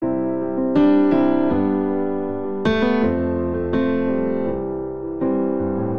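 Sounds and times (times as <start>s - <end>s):
rock ballad chord progression in C major on MIDI grand piano: 0.0s - 5.9s.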